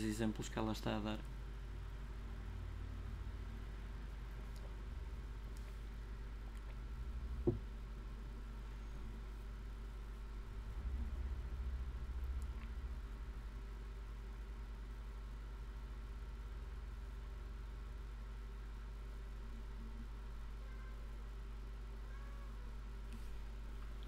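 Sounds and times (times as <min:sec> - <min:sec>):
speech: 0:00.0 - 0:01.4
constant low mechanical hum: 0:00.0 - 0:24.0
cat meowing: 0:22.0 - 0:22.7.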